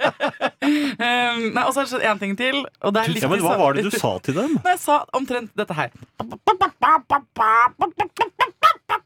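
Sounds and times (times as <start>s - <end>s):
speech: 0.0s - 8.5s
person imitating hen clucking: 6.2s - 9.0s.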